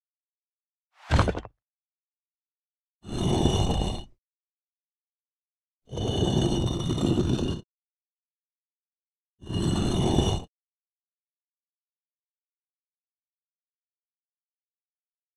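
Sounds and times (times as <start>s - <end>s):
stone sliding: 1.0s - 1.5s, 3.1s - 4.1s, 5.9s - 7.7s, 9.4s - 10.5s.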